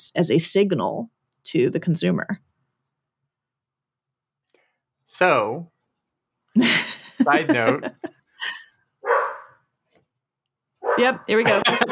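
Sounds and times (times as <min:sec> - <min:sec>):
speech: 0:00.0 - 0:02.5, 0:05.2 - 0:05.7, 0:06.6 - 0:08.6, 0:11.0 - 0:11.9
laughter: 0:06.6 - 0:08.6, 0:11.4 - 0:11.9
dog barking: 0:09.0 - 0:09.6, 0:10.8 - 0:11.2.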